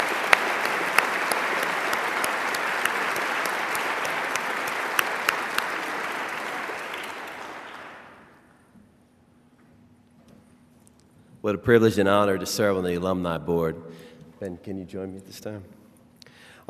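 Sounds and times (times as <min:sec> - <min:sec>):
room full of people clapping: 0:00.0 - 0:08.5
speech: 0:11.5 - 0:15.8.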